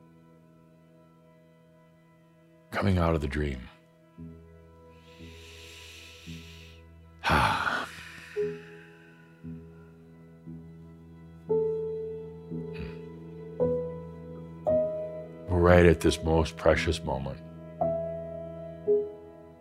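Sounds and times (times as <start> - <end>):
soft sustained musical drone: 0.0 - 19.5
speech: 2.7 - 4.3, 16.0 - 17.5
deep breath in and out during a guided meditation: 5.0 - 9.6.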